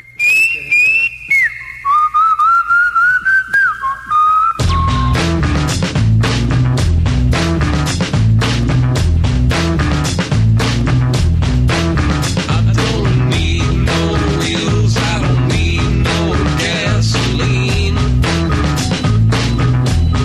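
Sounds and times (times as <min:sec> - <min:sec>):
bright melodic whistled tune: 0:00.0 - 0:05.7, 0:17.4 - 0:20.2
full band with drums and bass: 0:04.6 - 0:20.2.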